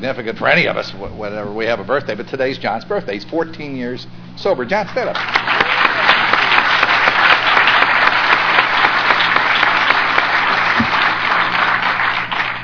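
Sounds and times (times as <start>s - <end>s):
speech: 0.0s - 5.6s
audience applauding at an Alcoholics Anonymous meeting: 5.1s - 12.6s.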